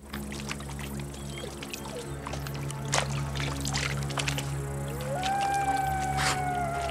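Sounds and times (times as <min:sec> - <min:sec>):
steady wind-like noise: 0:00.0 - 0:06.8
wolves howling: 0:04.9 - 0:06.8.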